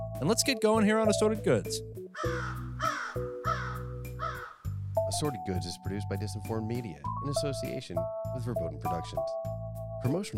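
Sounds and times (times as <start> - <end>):
speech: 0.2 - 2.6, 5.1 - 10.3
crow cawing: 2.2 - 4.8.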